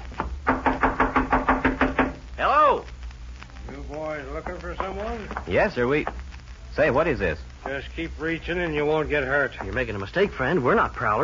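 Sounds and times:
knocking on a wooden door of a house: 0.2 - 2.2
speech: 3.9 - 6.2, 6.8 - 11.2.

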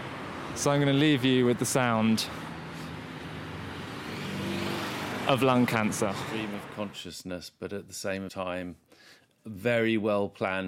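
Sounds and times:
engine and tyre noise: 0.0 - 7.0
road traffic heard from inside a car: 0.0 - 7.0
speech: 0.6 - 2.5, 5.3 - 10.6.

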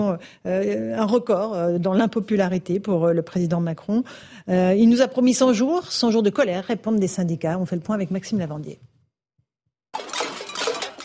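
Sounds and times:
speech: 0.0 - 8.9
protesters banging on saucepans: 10.0 - 11.0.

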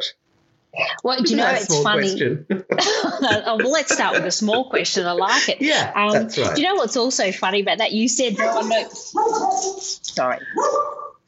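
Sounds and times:
speech: 0.0 - 11.2
laughter: 1.2 - 6.8, 8.4 - 10.6
pet dogs barking: 8.4 - 9.9, 10.5 - 11.2
pet dog whining: 8.4 - 10.0.

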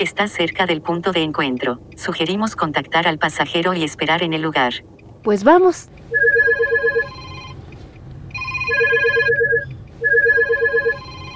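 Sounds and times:
speech: 0.0 - 6.4
mobile phone ringtone for an incoming call in a car: 6.1 - 7.6, 8.3 - 11.3.

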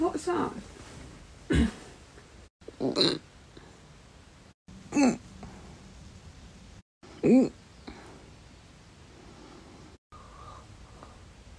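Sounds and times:
speech: 0.2 - 0.7, 7.3 - 7.6
person retching, played recording: 2.7 - 3.3, 4.9 - 5.2.

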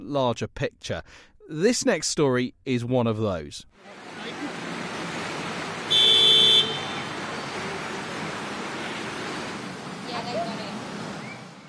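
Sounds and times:
speech: 0.1 - 4.4
cars driving through a small shopping district in Queensland: 3.8 - 11.6.

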